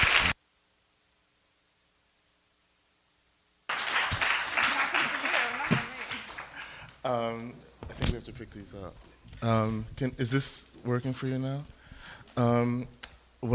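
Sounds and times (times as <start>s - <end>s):
audience applause welcoming speakers: 0.0s - 0.4s, 3.7s - 7.0s
speech: 7.0s - 13.5s.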